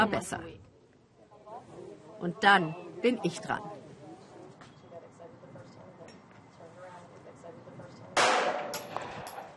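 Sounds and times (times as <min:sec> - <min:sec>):
speech: 0:00.0 - 0:00.7, 0:02.2 - 0:03.8
talking: 0:00.0 - 0:08.4
handgun gunshot in a reverberant indoor shooting range: 0:08.2 - 0:09.3.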